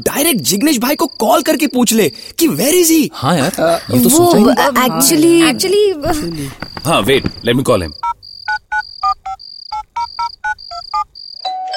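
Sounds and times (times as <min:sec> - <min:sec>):
speech: 0:00.0 - 0:08.2
electronic doorbell chiming: 0:10.0 - 0:11.7.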